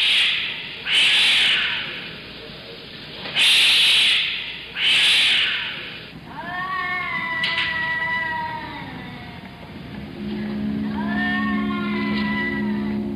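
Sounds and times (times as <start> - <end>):
cats hissing at night: 0.0 - 2.6, 3.2 - 9.8, 10.9 - 13.0.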